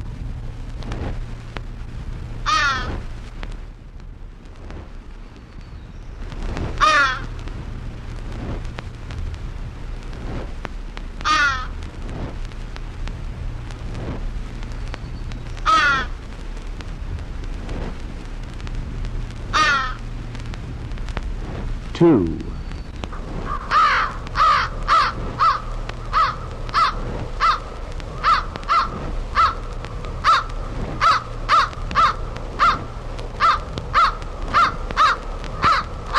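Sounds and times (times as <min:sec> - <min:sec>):
steady low hum: 0:00.0 - 0:36.1
common crow cawing harshly: 0:02.4 - 0:02.9, 0:06.8 - 0:07.3, 0:11.2 - 0:11.7, 0:15.6 - 0:16.2, 0:19.5 - 0:20.0, 0:23.4 - 0:36.1
speech: 0:22.0 - 0:22.4.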